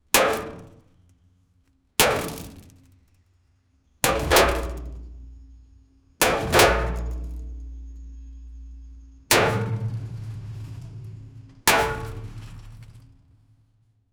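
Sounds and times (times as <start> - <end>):
powerful hit to metal: 4.0 - 13.6.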